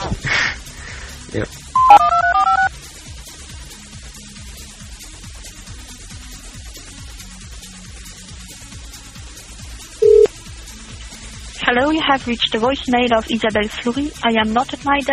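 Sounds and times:
speech: 1.3s - 2.0s, 11.7s - 15.1s
touch-tone dialing beeps on an outgoing call: 1.8s - 2.7s, 10.0s - 10.3s.

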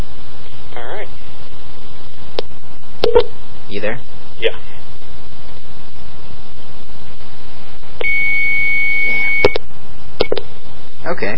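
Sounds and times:
phone-line static: 3.0s - 3.4s, 8.0s - 10.4s
speech: 3.8s - 4.7s, 11.2s - 11.3s
short beep: 8.0s - 9.6s.

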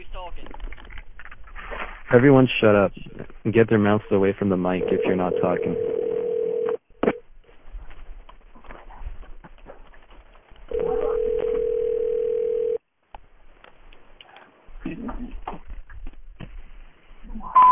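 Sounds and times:
speech: 2.1s - 6.0s
phone line noise: 4.8s - 6.8s, 10.7s - 12.8s
telephone dial tone over a phone line: 4.8s - 6.8s, 10.7s - 12.8s.

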